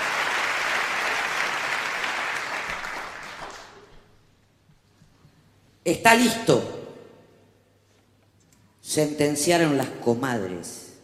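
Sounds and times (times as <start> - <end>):
audience applause for the poets: 0.0 - 4.1
speech: 5.8 - 6.8, 9.0 - 10.8.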